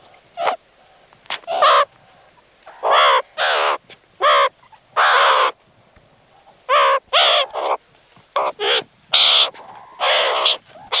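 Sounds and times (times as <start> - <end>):
meerkat calling with loud raspy squawks: 2.8 - 5.6, 6.7 - 7.8, 8.4 - 10.9.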